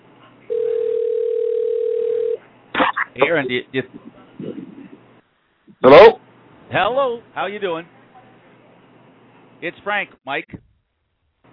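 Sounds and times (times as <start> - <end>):
ringback tone on an outgoing telephone call: 0.5 - 2.4
speech: 3.2 - 4.2, 6.8 - 8.0, 9.6 - 10.6.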